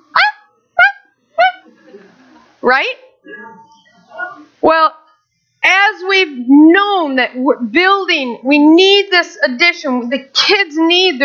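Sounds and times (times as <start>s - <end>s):
person's voice imitating a little chihuahua's bark: 0.0s - 1.7s
faint murmur: 0.0s - 5.8s
speech: 2.6s - 3.4s, 4.2s - 5.0s, 5.8s - 11.2s.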